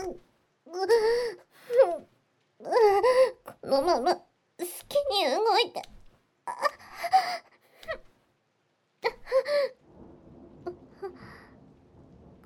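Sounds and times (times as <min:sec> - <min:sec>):
breathy vocal gasps and moans: 0:00.7 - 0:02.1, 0:06.5 - 0:08.0, 0:09.0 - 0:09.8, 0:10.7 - 0:11.6
speech: 0:03.7 - 0:05.9
low rolling thunder: 0:09.4 - 0:12.4.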